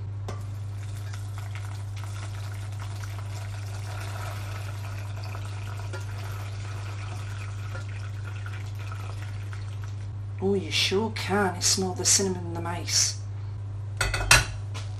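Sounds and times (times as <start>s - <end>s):
low constant hum: 0.0s - 14.9s
milk strained and poured into a bowl: 0.7s - 10.1s
speech: 10.4s - 13.2s.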